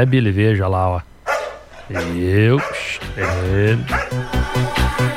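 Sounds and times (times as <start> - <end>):
speech: 0.0 - 1.1, 1.9 - 4.7
large dog barking: 1.2 - 4.3
large dog howling: 1.3 - 5.0.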